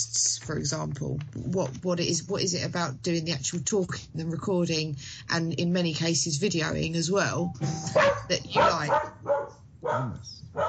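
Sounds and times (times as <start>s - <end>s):
speech: 0.0s - 10.6s
dog barking: 7.9s - 10.6s.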